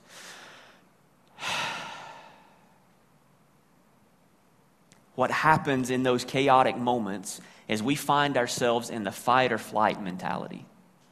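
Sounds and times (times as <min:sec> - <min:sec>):
deep breath in and out: 0:00.0 - 0:02.8
speech: 0:05.2 - 0:10.7.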